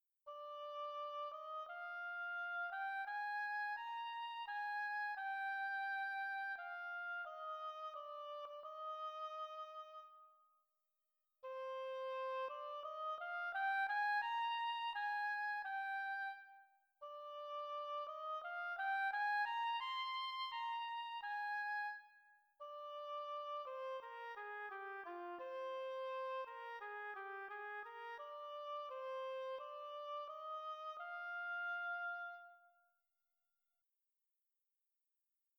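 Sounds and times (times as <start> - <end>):
slow oboe: 0.3 - 10.4, 11.4 - 32.9.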